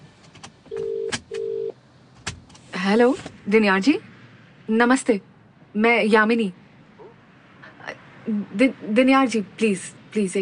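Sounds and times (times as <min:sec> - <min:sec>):
telephone ringback tones: 0:00.7 - 0:01.7
speech: 0:02.9 - 0:04.1, 0:04.7 - 0:06.6, 0:08.3 - 0:10.4.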